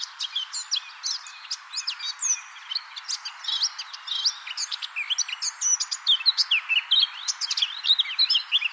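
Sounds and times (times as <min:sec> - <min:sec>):
Eurasian blackcap Sylvia atricapilla singing: 0:00.0 - 0:08.7.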